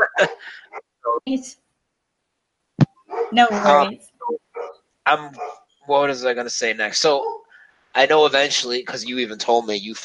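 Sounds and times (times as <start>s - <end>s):
laughter: 0.0s - 0.6s, 3.5s - 3.9s, 5.1s - 5.3s, 5.9s - 7.2s, 8.0s - 10.0s
speech: 1.2s - 1.6s, 3.3s - 4.1s, 5.0s - 7.3s, 8.0s - 10.0s
short sharp dog barks: 3.1s - 3.4s, 4.5s - 5.6s, 7.0s - 7.5s.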